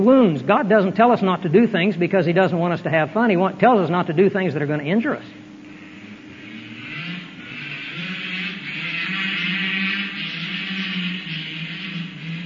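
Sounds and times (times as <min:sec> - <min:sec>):
speech: 0:00.0 - 0:05.4
motorbike engine revving and accelerating outdoors: 0:05.4 - 0:12.4.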